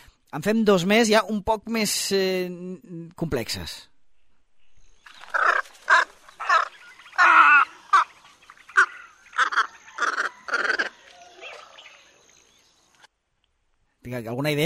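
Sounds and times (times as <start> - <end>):
speech: 0.3 - 3.9, 14.1 - 14.6
squacco heron Ardeola ralloides giving harsh rasping croaks: 5.3 - 8.1, 8.7 - 11.0.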